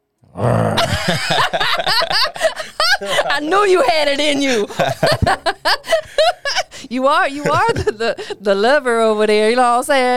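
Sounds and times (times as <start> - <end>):
person imitating a lion's roar: 0.3 - 1.0
laughter: 0.8 - 8.6
speech: 1.1 - 2.1, 3.0 - 5.6, 6.9 - 10.1.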